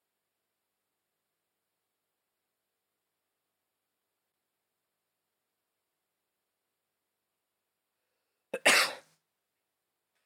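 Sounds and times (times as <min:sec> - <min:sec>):
person sneezing: 0:08.6 - 0:09.1.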